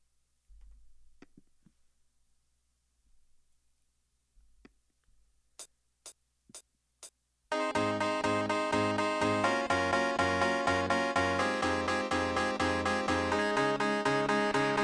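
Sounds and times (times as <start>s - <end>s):
upbeat song intro with staccato chords and bass line: 7.5s - 14.8s.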